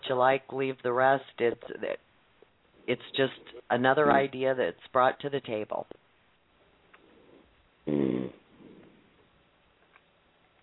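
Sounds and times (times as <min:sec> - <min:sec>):
speech: 0:00.1 - 0:02.1, 0:02.9 - 0:06.0, 0:07.9 - 0:08.4
short rumbling snore: 0:07.9 - 0:09.0.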